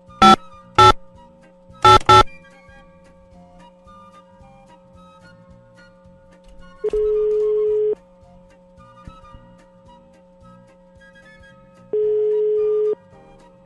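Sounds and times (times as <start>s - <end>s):
dialed telephone call ringing tones: 0.2s - 1.0s, 1.8s - 2.3s, 6.9s - 8.0s, 12.0s - 13.0s.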